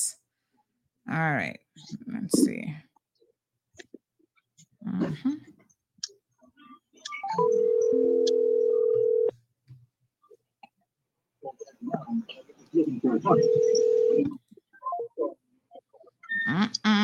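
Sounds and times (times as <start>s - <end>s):
speech: 1.1s - 2.9s, 4.8s - 5.5s, 11.4s - 14.4s, 16.4s - 17.0s
telephone dialing tones: 7.3s - 9.3s, 13.3s - 14.3s.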